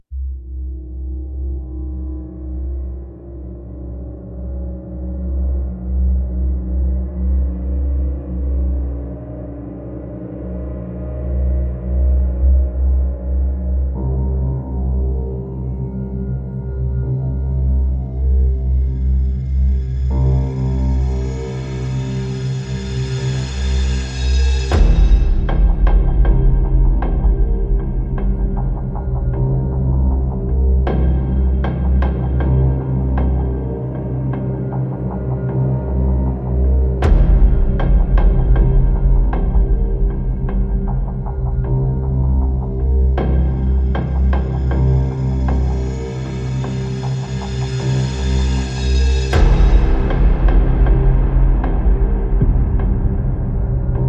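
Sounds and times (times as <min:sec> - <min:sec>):
bass: 0:00.0 - 0:54.0
drums: 0:23.1 - 0:33.4, 0:37.0 - 0:45.9, 0:46.7 - 0:54.0.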